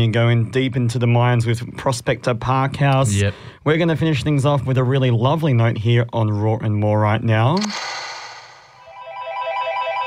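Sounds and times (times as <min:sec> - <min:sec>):
speech: 0:00.0 - 0:08.0
phone ringtone as part of a song: 0:08.8 - 0:10.0.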